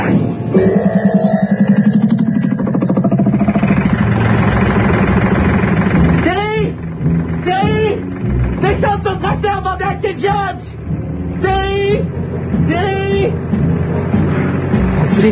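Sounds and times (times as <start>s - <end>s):
swooping vocal sounds: 0.0s - 3.8s
tractor engine idling: 0.8s - 15.3s.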